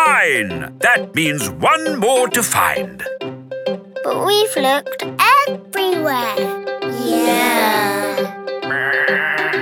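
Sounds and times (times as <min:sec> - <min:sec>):
speech: 0:00.2 - 0:03.1, 0:04.1 - 0:08.3
sheep bleating: 0:07.0 - 0:09.5.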